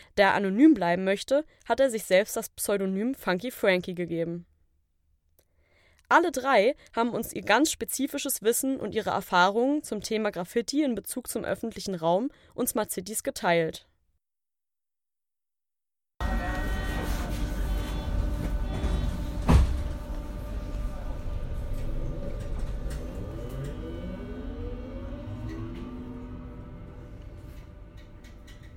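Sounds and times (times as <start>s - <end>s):
speech: 0.2s - 4.5s, 6.1s - 13.9s
subway train electric motor whine: 16.2s - 28.4s
subway train rumbling in a station: 16.2s - 28.7s.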